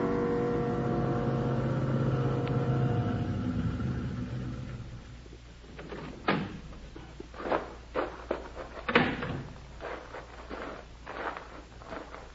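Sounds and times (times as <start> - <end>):
car engine driving: 0.2 - 5.3
thumps: 5.3 - 10.5.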